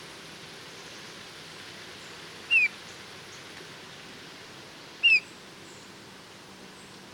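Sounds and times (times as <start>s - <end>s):
steady hiss: 0.0s - 7.1s
Eurasian bullfinch Pyrrhula pyrrhula piped whistles: 2.5s - 2.8s, 5.0s - 5.3s.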